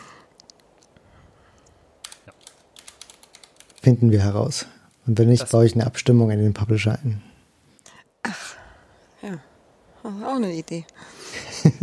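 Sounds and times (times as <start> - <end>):
soft typing of notes on a computer keyboard: 2.0 - 4.0
speech: 3.9 - 7.3, 9.3 - 11.8
laughter: 11.3 - 11.8.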